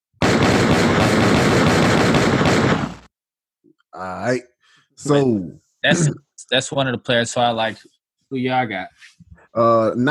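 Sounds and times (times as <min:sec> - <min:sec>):
rapid automatic-style gunshot sound effects: 0:00.2 - 0:03.1
speech: 0:04.0 - 0:10.0.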